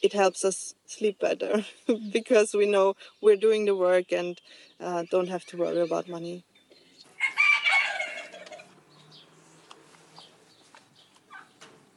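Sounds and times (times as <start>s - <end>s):
speech: 0.0s - 6.5s
rooster crowing: 7.1s - 9.3s.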